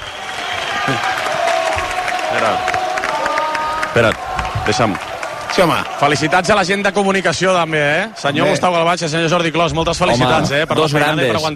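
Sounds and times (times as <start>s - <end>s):
large crowd applauding for a goal scorer: 0.0s - 9.0s
large crowd cheering for a goal scorer: 0.0s - 11.5s
speech: 0.9s - 1.2s, 2.3s - 2.8s, 3.9s - 11.5s.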